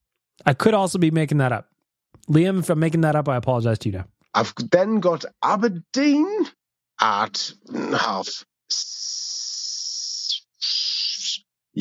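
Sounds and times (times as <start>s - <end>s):
speech: 0.4s - 9.2s
person imitating a snake hiss with the mouth: 8.7s - 11.4s.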